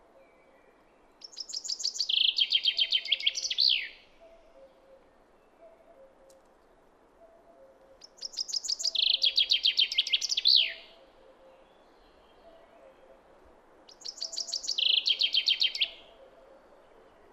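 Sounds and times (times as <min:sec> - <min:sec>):
common chaffinch singing: 0:01.2 - 0:04.8, 0:08.0 - 0:12.5, 0:13.9 - 0:16.3.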